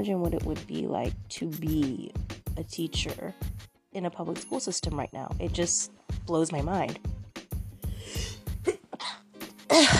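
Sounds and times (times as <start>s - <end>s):
speech: 0.0s - 7.2s, 9.7s - 9.9s
person sneezing: 8.1s - 9.9s.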